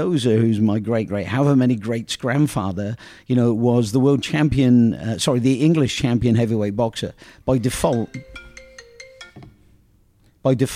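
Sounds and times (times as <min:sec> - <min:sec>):
speech: 0:00.0 - 0:08.4, 0:10.4 - 0:10.7
mobile phone ringtone: 0:07.6 - 0:09.8.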